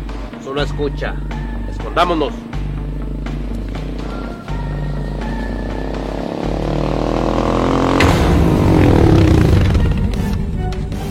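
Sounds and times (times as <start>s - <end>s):
speech: 0.4s - 2.5s
vehicle engine roaring while arriving: 3.5s - 11.0s.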